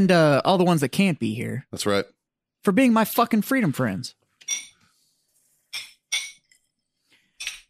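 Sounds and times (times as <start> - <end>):
speech: 0.0 - 4.7
glasses clinking in a toast: 4.4 - 4.8, 5.7 - 6.7, 7.3 - 7.6.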